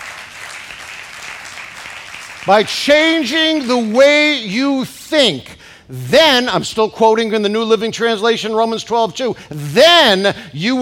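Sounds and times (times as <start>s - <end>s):
audience at a sermon clapping: 0.0s - 4.6s
speech: 2.4s - 10.8s.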